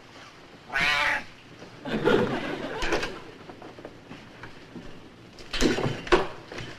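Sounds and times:
cat meowing: 0:00.7 - 0:01.3
laughter: 0:01.8 - 0:03.3.

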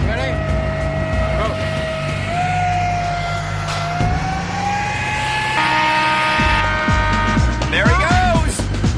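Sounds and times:
jet-powered vehicle engine revving with high turbine whine: 0:00.0 - 0:07.7
constant rumbling drone: 0:00.0 - 0:08.9.

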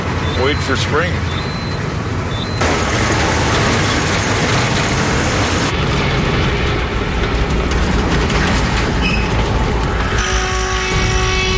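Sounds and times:
truck engine low on oil running rough with sputtering and knocking: 0:00.0 - 0:11.5
speech: 0:00.4 - 0:01.5.

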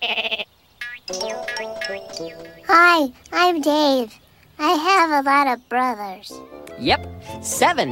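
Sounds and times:
sheep bleating: 0:00.0 - 0:00.5
speech: 0:01.9 - 0:07.9.

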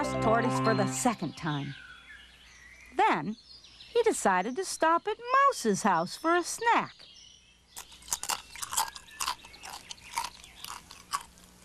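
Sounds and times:
speech: 0:00.2 - 0:01.9, 0:03.0 - 0:07.1
crunchy munching of crackers and cheese: 0:07.8 - 0:11.6.

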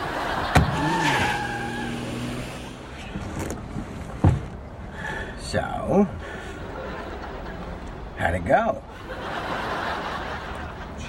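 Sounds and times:
laughter: 0:00.0 - 0:01.7, 0:06.4 - 0:07.9, 0:08.8 - 0:11.0
car speeding away with engine revving: 0:00.4 - 0:04.2
sharp thumps: 0:00.5 - 0:04.6
speech: 0:05.5 - 0:06.3, 0:08.2 - 0:08.9.

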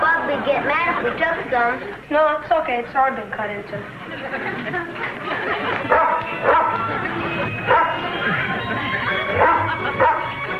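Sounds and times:
murmur: 0:00.0 - 0:10.5
speech: 0:00.5 - 0:10.3
laughter: 0:03.9 - 0:10.5
dog barking: 0:05.9 - 0:06.8, 0:07.6 - 0:08.1, 0:09.3 - 0:10.4.

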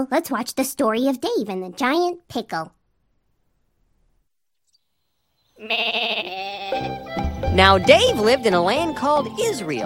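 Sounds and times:
speech: 0:00.0 - 0:02.8, 0:05.6 - 0:09.8
sheep bleating: 0:05.6 - 0:07.1.

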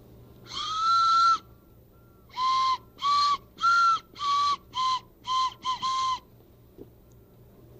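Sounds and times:
hammer-shaped whistle being blown: 0:00.5 - 0:06.3.

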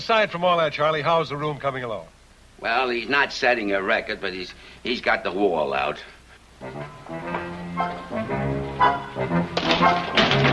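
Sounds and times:
speech: 0:00.0 - 0:07.9, 0:08.8 - 0:10.5
objects tumbling and knocking together: 0:09.5 - 0:10.5
loud crash: 0:09.6 - 0:10.5.

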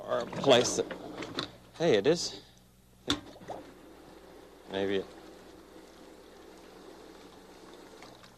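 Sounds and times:
speech: 0:00.1 - 0:02.5, 0:04.7 - 0:05.2
water running from a hospital-type sink fixture: 0:03.3 - 0:08.3.

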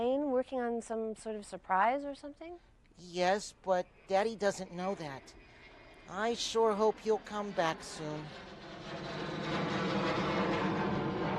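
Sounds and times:
speech: 0:00.0 - 0:05.5, 0:06.1 - 0:09.3
jet plane flying in with engine roar: 0:04.2 - 0:11.3.

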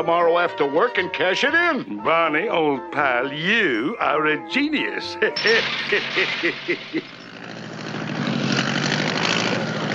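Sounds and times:
speech: 0:00.0 - 0:07.2
laughter: 0:05.1 - 0:07.2
propeller airplane engine droning while coming in to land: 0:07.0 - 0:09.9.

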